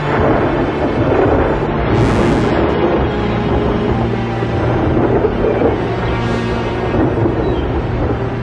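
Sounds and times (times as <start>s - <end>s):
distant thunder rolling over the sea: 0.0s - 8.4s
steady wash of storm noise: 0.0s - 8.4s.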